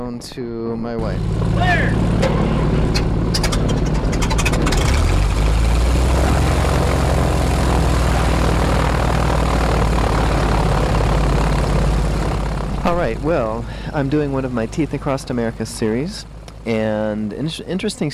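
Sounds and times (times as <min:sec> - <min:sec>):
propeller airplane engine droning roar: 0:00.0 - 0:18.1
speech: 0:00.1 - 0:04.2, 0:13.1 - 0:18.1.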